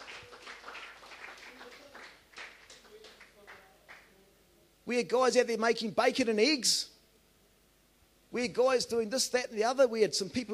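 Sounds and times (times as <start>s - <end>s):
audience in a church applauding: 0.0s - 4.1s
speech: 4.9s - 6.9s, 8.3s - 10.5s.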